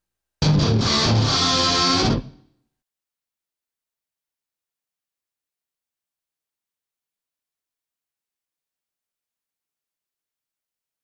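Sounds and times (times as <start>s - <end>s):
solo guitar riff: 0.4s - 2.4s.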